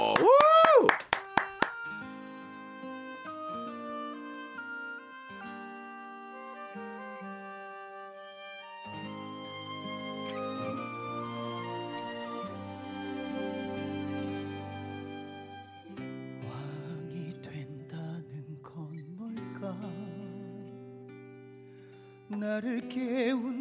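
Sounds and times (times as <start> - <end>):
hand claps: 0.0 - 2.0
instrumental music: 1.0 - 23.5
speech: 22.4 - 23.5.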